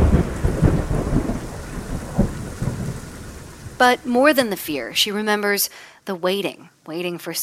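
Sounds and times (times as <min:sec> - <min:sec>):
deep monsoon thunder rumbles: 0:00.0 - 0:05.0
monsoon rain hissing: 0:00.0 - 0:07.4
speech: 0:03.8 - 0:07.4.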